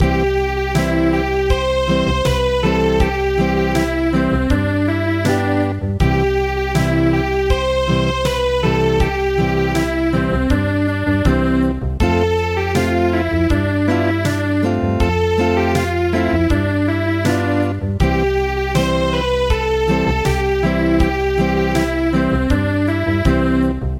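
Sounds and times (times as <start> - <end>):
acoustic traditional MIDI music: 0.0 - 23.9.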